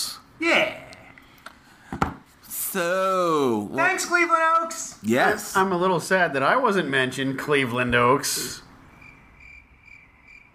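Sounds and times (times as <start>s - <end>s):
speech: 0.4s - 0.8s, 2.8s - 8.6s
crickets chirping: 8.8s - 10.5s.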